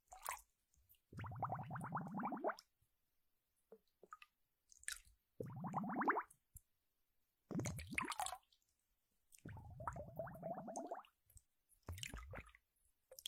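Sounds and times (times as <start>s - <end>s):
water squelching and gurgling in wet bursts: 1.1s - 2.7s, 4.0s - 6.3s, 7.5s - 8.5s, 9.4s - 11.2s, 11.8s - 12.6s.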